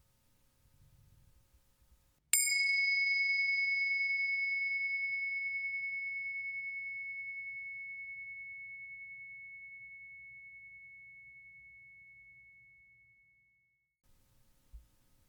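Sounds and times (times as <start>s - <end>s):
meditation bell ringing: 2.4s - 13.2s.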